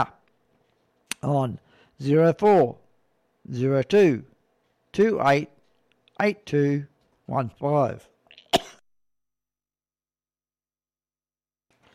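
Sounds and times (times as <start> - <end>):
speech: 1.2 - 2.8, 3.4 - 4.3, 5.0 - 5.6, 6.2 - 8.1
person coughing from a tickle in the throat: 8.4 - 8.8.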